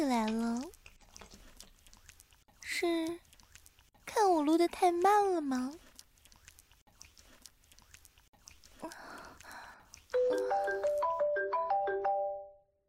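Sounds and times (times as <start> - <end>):
speech: 0.0 - 0.8, 2.8 - 3.3, 4.4 - 5.8
soft wet rustling: 0.0 - 11.0
chewing-like noises: 0.0 - 11.1
mobile phone ringtone for an incoming call: 10.2 - 12.6.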